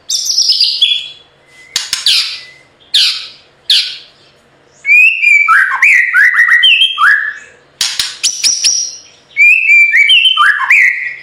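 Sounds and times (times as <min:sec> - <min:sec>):
white-rumped shama continuous rolling whistled song: 0:04.9 - 0:07.5, 0:08.3 - 0:11.2.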